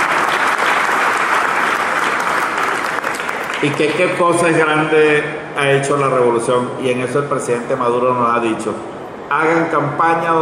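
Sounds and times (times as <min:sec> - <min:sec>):
large audience applause for the governor of Carabobo: 0:00.0 - 0:04.2
speech: 0:03.6 - 0:10.4.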